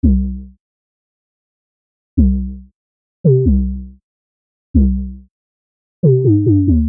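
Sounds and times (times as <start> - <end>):
synthesizer 808 bass: 0.0 - 0.6, 2.2 - 2.7, 3.3 - 4.0, 4.8 - 5.3, 6.0 - 6.8.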